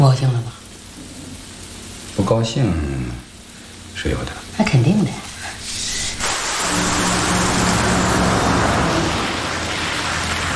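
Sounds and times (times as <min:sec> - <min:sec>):
speech: 0:00.0 - 0:01.2, 0:02.2 - 0:03.2, 0:04.0 - 0:05.3
rain and tire spray on a wet road: 0:00.0 - 0:10.5.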